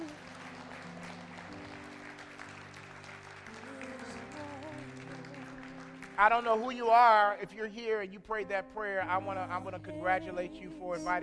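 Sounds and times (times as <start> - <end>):
audience applauding: 0.0 - 6.9
sustained organ or keyboard chords: 0.0 - 11.2
speech: 6.2 - 11.2.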